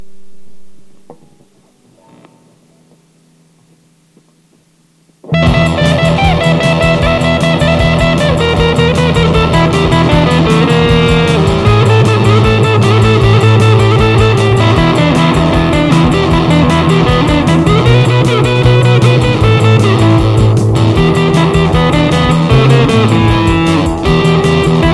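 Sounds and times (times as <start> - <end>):
rock and roll music: 5.2 - 24.9.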